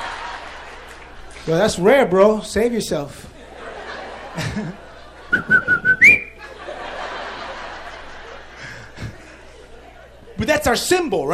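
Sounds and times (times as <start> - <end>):
speech: 1.5 - 3.4, 4.4 - 6.3, 10.4 - 11.3
person chuckling: 4.4 - 6.6, 8.5 - 9.4
person whistling an imitation of a coquí frog call: 5.3 - 6.4.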